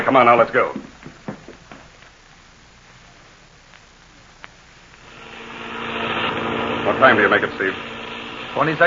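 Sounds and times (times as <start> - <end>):
speech: 0.0 - 0.9, 7.0 - 7.9, 8.5 - 8.8
airplane engine droning in flight: 5.0 - 8.8.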